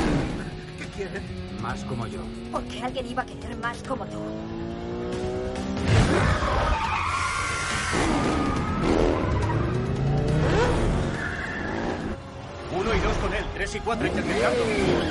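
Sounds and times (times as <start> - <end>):
motorcycles roaring in a chase into a parking lot: 0.0 - 15.0
red car engine revving in a chase: 0.0 - 15.0
speech: 1.0 - 7.1, 7.9 - 8.6, 12.9 - 15.0
tires skidding and squealing: 5.8 - 12.2, 12.9 - 15.0.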